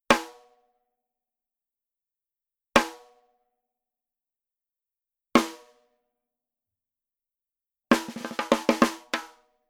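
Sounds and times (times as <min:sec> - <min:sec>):
snare drum hybrid rim shot with tom heads: 0:08.0 - 0:09.3.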